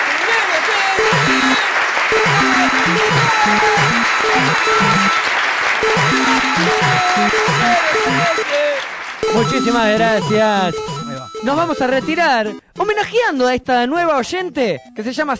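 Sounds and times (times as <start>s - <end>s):
applause for a new listener: 0.0s - 12.2s
bouncy repeating melody: 1.0s - 5.2s, 5.8s - 8.5s, 9.2s - 15.3s
speech: 3.4s - 15.3s.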